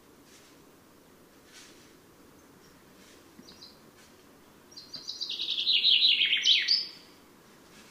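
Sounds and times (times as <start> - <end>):
common chaffinch Fringilla coelebs singing: 3.4 - 3.9, 4.7 - 7.2.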